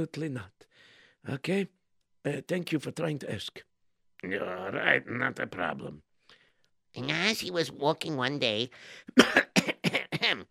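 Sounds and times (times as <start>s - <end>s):
speech: 0.0s - 0.6s, 1.2s - 6.1s, 7.0s - 9.5s
person clearing throat: 9.2s - 10.4s.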